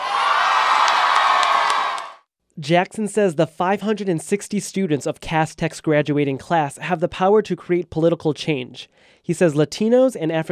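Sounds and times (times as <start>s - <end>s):
large crowd of graduating students screaming and cheering: 0.0s - 2.2s
speech: 2.6s - 10.5s.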